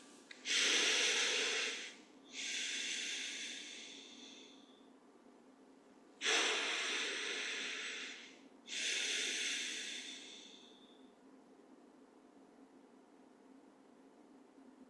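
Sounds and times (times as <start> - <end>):
deep breathing in and out: 0.3 - 4.9, 6.2 - 11.0.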